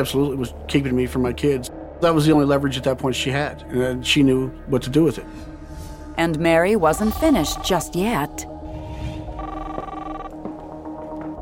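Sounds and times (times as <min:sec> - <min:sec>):
speech: 0:00.0 - 0:05.5, 0:06.2 - 0:08.5
telephone ringing: 0:07.0 - 0:08.2, 0:09.4 - 0:10.5.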